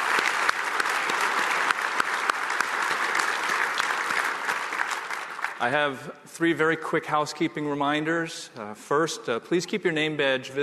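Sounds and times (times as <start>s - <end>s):
sustained audience applause from a sizable crowd: 0.0s - 5.8s
speech: 5.6s - 10.6s.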